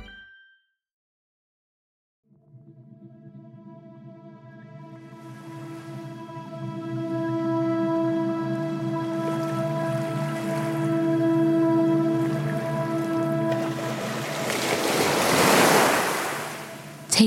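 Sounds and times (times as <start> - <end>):
low sustained tonal drone: 2.4 - 14.8
ocean waves washing: 4.9 - 17.2
breathy sea wind: 5.0 - 17.2
surf building and breaking: 12.1 - 17.0.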